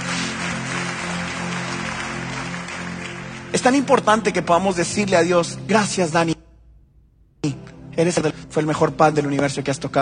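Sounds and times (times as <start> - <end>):
congregation clapping hands: 0.0 - 4.7
speech: 3.5 - 6.4, 8.0 - 9.9.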